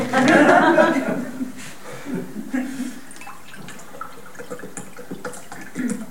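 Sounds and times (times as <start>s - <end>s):
laughter: 0.0s - 2.9s
water pouring into a glass: 3.1s - 6.0s.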